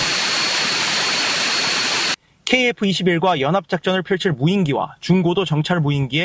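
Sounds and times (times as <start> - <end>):
military aircraft jet engine running on test: 0.0 - 2.2
speech: 2.5 - 6.2.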